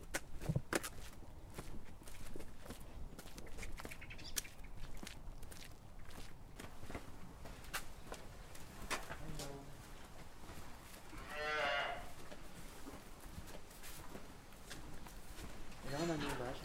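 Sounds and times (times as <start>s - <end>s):
busy outdoor background on a farm: 0.0s - 16.6s
oldest cow of the herd mooing on a farm: 11.1s - 12.1s.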